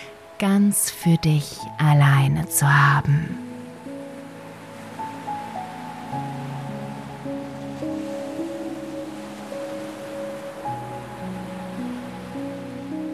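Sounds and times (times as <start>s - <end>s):
speech: 0.4s - 3.5s
ocean waves washing onto a beach: 3.4s - 13.1s.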